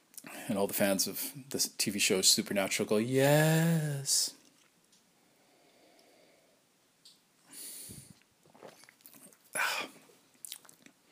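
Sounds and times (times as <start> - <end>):
speech: 0.5 - 4.4
person slurping cold coffee from a cup: 7.9 - 10.8
person swallowing: 7.9 - 10.8.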